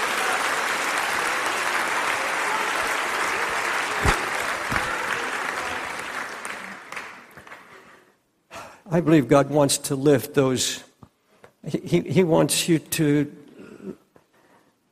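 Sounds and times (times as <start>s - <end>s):
audience in a church applauding: 0.0s - 8.0s
speech: 8.9s - 10.9s, 11.6s - 13.4s.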